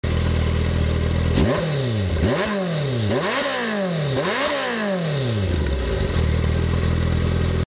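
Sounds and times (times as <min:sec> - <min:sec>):
Kawasaki GTR 1400 motorcycle engine: 0:00.0 - 0:07.6.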